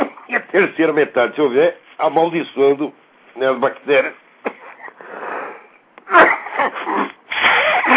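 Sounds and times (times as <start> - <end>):
speech: 0.5 - 4.2, 6.6 - 7.1
person with flu sneezing: 4.4 - 7.9
congested snuffly inhale: 4.9 - 5.8, 6.9 - 7.9
person with flu coughing: 6.1 - 7.9.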